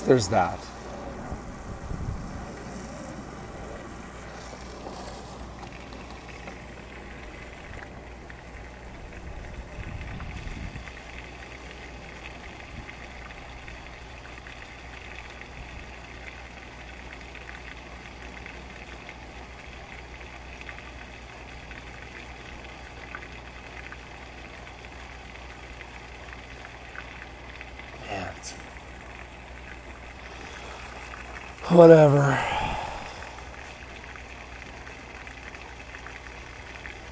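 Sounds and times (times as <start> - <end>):
diesel fuel pumping into a tractor: 0.0 - 37.1
low mechanical hum of a diesel fuel pump: 0.0 - 37.1
speech: 0.1 - 0.8, 31.8 - 32.5.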